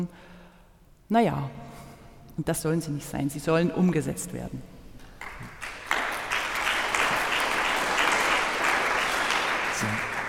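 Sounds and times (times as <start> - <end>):
speech: 0.0 - 0.3, 1.1 - 1.6, 2.4 - 4.7
audience applause: 5.2 - 10.2.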